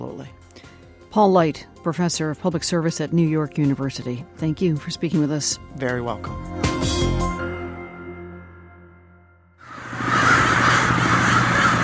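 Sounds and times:
speech: 1.2 - 7.3
more than 10,000 crows wintering in downtown Nampa Idaho cawing: 9.6 - 11.8.

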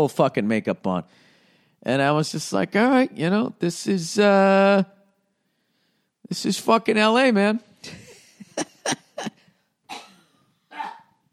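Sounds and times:
speech: 0.0 - 5.0, 6.3 - 8.0, 8.6 - 9.4
laughter: 7.8 - 9.5
man with a lingering cough coughing: 9.9 - 11.2.

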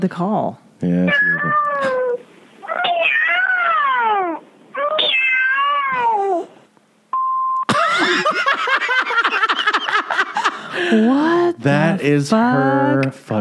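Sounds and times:
speech: 0.0 - 2.3, 10.8 - 13.3
cat meows over a phone line on a voicemail greeting: 1.1 - 6.4
people laughing: 7.7 - 11.5.

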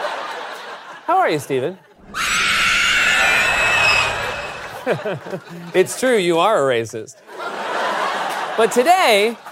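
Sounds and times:
laughter: 0.0 - 1.1, 1.8 - 6.0, 7.2 - 9.5
speech: 1.1 - 2.2, 4.8 - 7.3, 8.6 - 9.5
loud sustained distorted demonic shrieking scream: 2.0 - 5.0.

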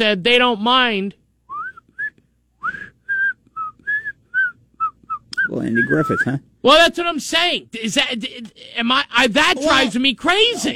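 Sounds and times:
speech: 0.0 - 1.2, 5.5 - 10.7
person whistling a short bouncy melody: 1.5 - 6.2.

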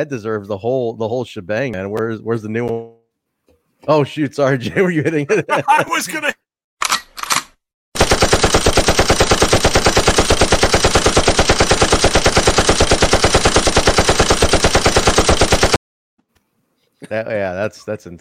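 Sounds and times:
speech: 0.0 - 2.8, 3.8 - 6.4, 17.0 - 18.2
laughter: 4.5 - 6.3
rapid machine-gun fire sound effect: 8.0 - 15.8.

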